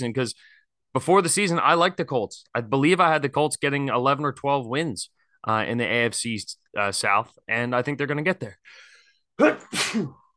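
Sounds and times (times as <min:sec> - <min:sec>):
speech: 0:00.0 - 0:10.2
loud sneeze: 0:09.4 - 0:10.3.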